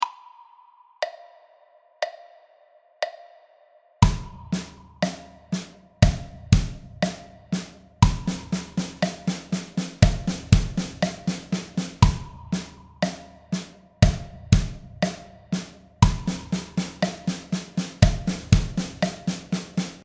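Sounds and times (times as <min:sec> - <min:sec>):
drum: 0:04.0 - 0:20.0.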